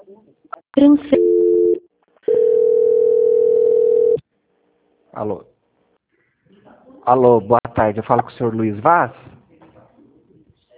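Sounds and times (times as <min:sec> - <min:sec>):
speech: 0:00.8 - 0:01.2, 0:05.2 - 0:05.5, 0:07.1 - 0:09.3
telephone line tones while a call is being transferred: 0:01.1 - 0:04.2.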